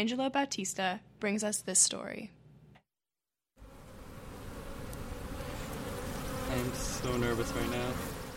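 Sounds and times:
speech: 0.0 - 2.4, 6.6 - 8.1
many honeybees swarming and buzzing around a person at a honey farm: 3.6 - 8.3.

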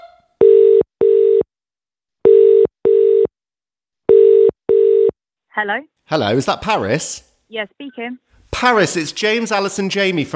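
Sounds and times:
telephone ringing tone after dialing a number: 0.4 - 1.5, 2.3 - 3.3, 4.1 - 5.1
speech: 5.6 - 10.3.

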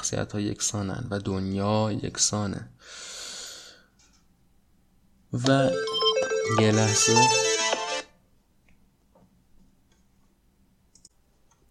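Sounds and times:
speech: 0.1 - 3.3, 5.3 - 7.5
mobile phone ringtone playing a bright melodic tune: 5.6 - 8.1.

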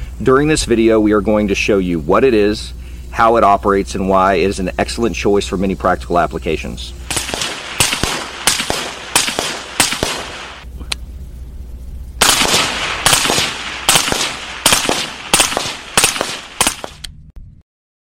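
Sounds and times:
speech: 0.2 - 7.1
AR-15 rifle with semi-automatic forced reset trigger firing: 7.1 - 10.6, 12.2 - 17.0.

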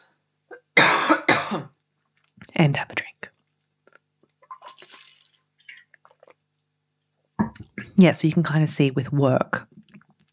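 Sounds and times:
person coughing: 0.5 - 1.8
speech: 2.6 - 3.0, 8.0 - 9.7.

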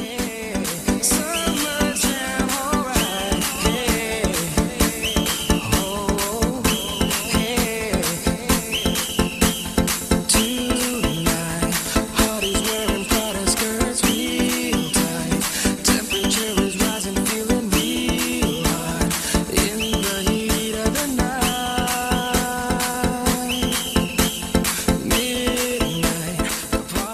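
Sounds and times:
dance track with a pounding beat: 0.0 - 27.1
shrill whistle blowing in rhythmic bursts: 1.1 - 11.4, 12.2 - 13.3, 14.0 - 16.6, 19.6 - 20.8, 23.3 - 26.2.

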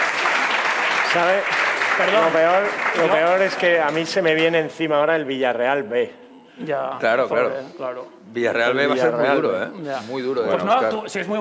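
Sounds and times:
live audience applause: 0.0 - 4.2
speech: 1.2 - 11.4.

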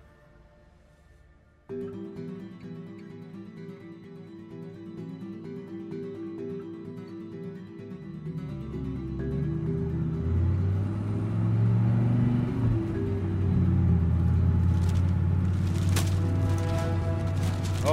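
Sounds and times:
car driving down a road: 9.2 - 17.9.

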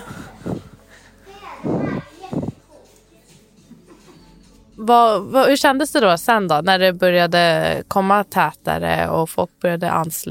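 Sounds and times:
schoolchildren shouting and calling while playing outdoors: 1.2 - 3.0
speech: 4.8 - 10.2.

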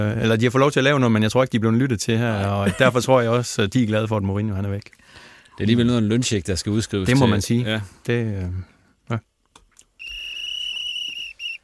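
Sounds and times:
speech: 0.0 - 5.0, 5.6 - 9.3
loud steady high-pitched whistle: 10.0 - 11.6.

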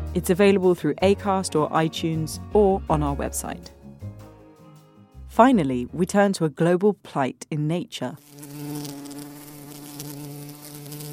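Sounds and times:
speech: 0.2 - 3.8, 5.3 - 8.4
bees buzzing: 8.2 - 11.1.

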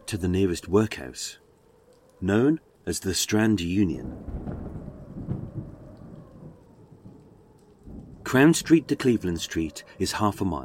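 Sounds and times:
steady rain: 0.0 - 10.6
speech: 0.1 - 1.4, 2.2 - 4.6, 8.3 - 10.6
rolling thunder from a fierce storm: 3.9 - 10.0.

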